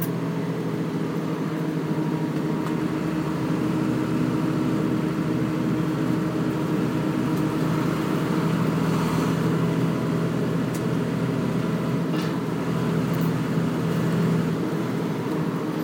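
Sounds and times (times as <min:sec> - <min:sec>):
Routemaster bus diesel engine running with automatic gearbox: 0:00.0 - 0:15.8.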